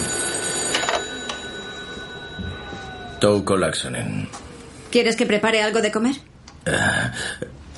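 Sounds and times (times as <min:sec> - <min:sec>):
telephone bell ringing: 0:00.0 - 0:04.3
steady hum: 0:00.0 - 0:07.7
speech: 0:03.2 - 0:07.6.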